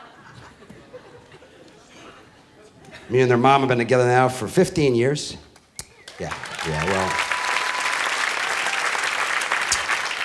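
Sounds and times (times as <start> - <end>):
speech: 3.1 - 5.5, 6.2 - 7.3
audience applause: 6.1 - 10.2.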